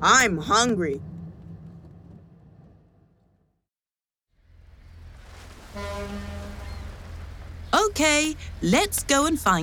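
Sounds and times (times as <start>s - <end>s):
speech: 0.0s - 1.1s, 7.7s - 9.6s
ferry engine rumbling on a crossing to France: 0.0s - 3.6s, 4.4s - 9.6s
ferry ship's horn blast: 5.5s - 7.6s.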